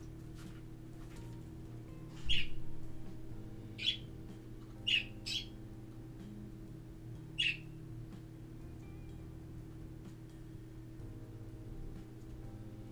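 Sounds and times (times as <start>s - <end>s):
steady low hum: 0.0s - 12.8s
birds squawking and chirping: 2.1s - 2.8s, 3.7s - 4.2s, 4.8s - 5.6s, 7.4s - 7.7s.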